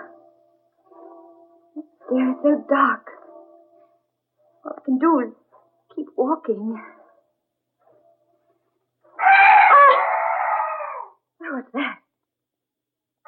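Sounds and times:
speech: 1.8s - 3.1s, 4.9s - 5.4s, 6.0s - 7.0s, 11.5s - 12.0s
strange night bird crying out: 9.2s - 11.2s.

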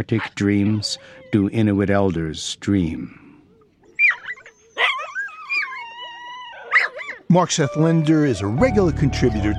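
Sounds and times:
speech: 0.0s - 3.2s, 7.3s - 9.5s
pack of sled dogs barking and yipping: 0.1s - 1.4s, 3.5s - 8.3s.

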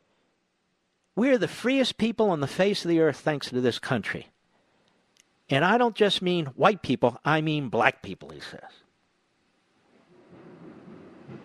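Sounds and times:
speech: 1.2s - 4.3s, 5.5s - 8.8s
thunder rumbling from a thunderstorm: 10.1s - 11.4s.

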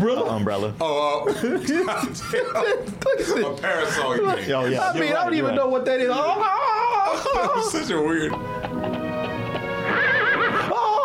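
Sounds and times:
speech: 0.0s - 8.8s
laughter: 1.1s - 11.0s
horse neighing: 9.8s - 10.8s.

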